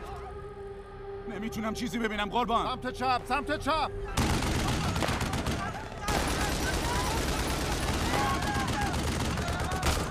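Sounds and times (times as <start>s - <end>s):
speech: 1.3s - 4.3s
voices shouting: 4.0s - 10.1s
dense rapid gunfire: 4.2s - 10.1s.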